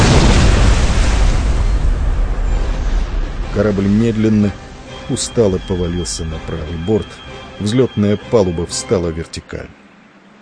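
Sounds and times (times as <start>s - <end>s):
powerful explosion blowing a hole in a ship's waterline: 0.0s - 5.7s
speech: 3.6s - 9.8s.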